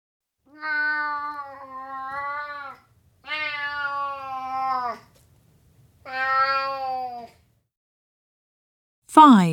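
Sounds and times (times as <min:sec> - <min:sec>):
cat giving long drawn-out meows: 0:00.5 - 0:05.0, 0:06.1 - 0:07.4.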